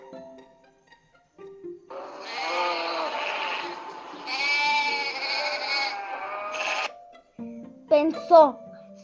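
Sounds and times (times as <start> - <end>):
sheep bleating: 1.9 - 6.9
speech: 8.1 - 8.7.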